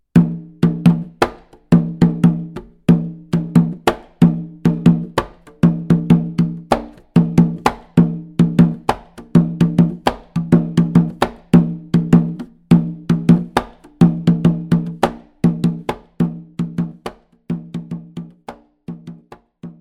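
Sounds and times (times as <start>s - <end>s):
atabaque drum: 0.1s - 19.8s.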